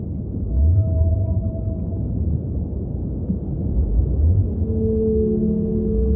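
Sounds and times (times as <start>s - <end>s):
deep continuous underwater rumble: 0.0s - 6.1s
blue whale song moans beneath the surface: 0.4s - 2.6s, 3.8s - 6.1s.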